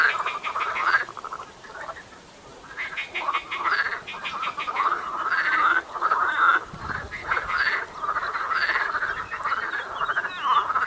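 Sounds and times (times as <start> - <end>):
marsh frogs giving rattling croaks: 0.0 - 10.8.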